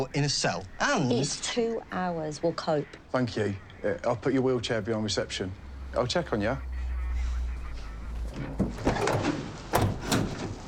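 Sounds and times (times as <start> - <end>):
speech: 0.0 - 6.7
police transit van doors being shut: 7.7 - 10.6.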